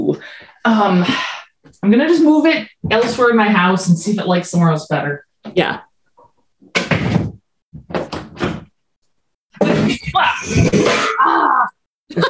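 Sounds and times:
speech: 0.2s - 5.8s, 10.1s - 12.2s
chair kicked over crashing onto a hard floor: 6.8s - 8.7s.

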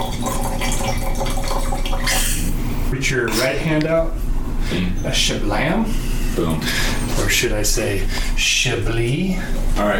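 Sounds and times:
wine pouring into a glass during a wine tasting: 0.0s - 2.6s
speech: 3.1s - 9.9s.

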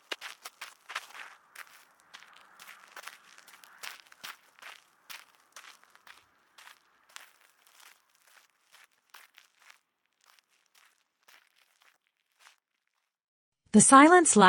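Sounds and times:
crunchy footsteps of a walker moving off: 0.0s - 13.2s
speech: 13.7s - 14.4s.

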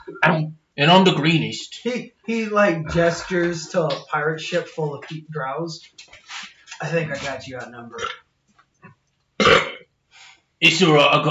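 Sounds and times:
speech: 0.2s - 6.2s, 6.8s - 8.2s, 10.6s - 11.2s
loud rumbling burp: 7.9s - 8.2s, 9.4s - 9.9s.

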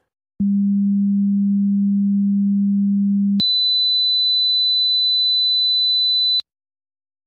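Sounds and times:
low hum test tone: 0.4s - 3.4s.

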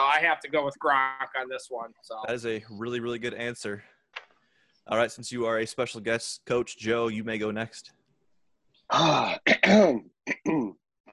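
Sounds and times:
speech: 0.2s - 4.0s, 4.8s - 8.0s, 8.9s - 10.8s
man clearing throat: 8.9s - 10.8s.

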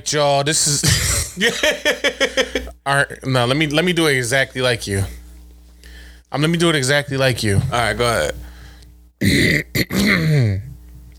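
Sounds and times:
speech: 0.0s - 5.2s, 6.3s - 8.5s, 9.2s - 10.7s
person clearing throat: 0.8s - 1.4s, 9.2s - 10.8s.

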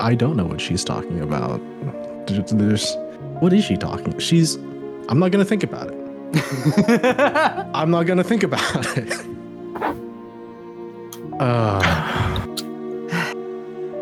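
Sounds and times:
speech: 0.0s - 9.4s, 11.4s - 12.2s
laughter: 6.3s - 10.0s
person on the floor breathing heavily: 9.8s - 10.1s, 11.8s - 13.4s
strained voiced gasps and rasps: 9.8s - 10.1s, 11.8s - 13.4s.

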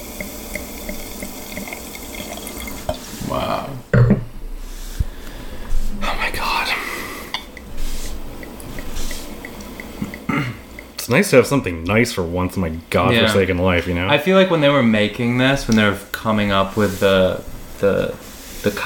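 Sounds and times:
champagne pouring into a glass and fizzing: 0.0s - 3.4s, 6.4s - 13.9s, 15.1s - 18.8s
speech: 11.1s - 18.8s.

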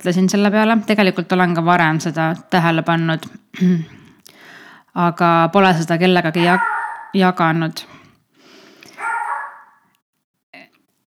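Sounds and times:
speech: 0.0s - 4.0s, 5.0s - 7.9s
family dog barking at home: 6.4s - 7.2s, 8.9s - 9.8s.

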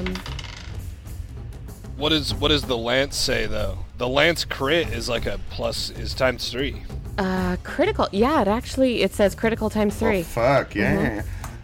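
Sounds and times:
die falling off a desk clattering onto a hard surface: 0.0s - 0.8s
speech: 2.0s - 11.4s.

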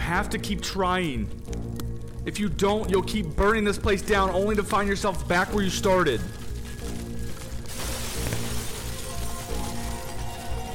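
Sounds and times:
speech: 0.1s - 6.4s
falling, scattering debris: 7.6s - 10.7s
chunk of popcorn ceiling crashing and shattering on floor: 7.7s - 10.2s.

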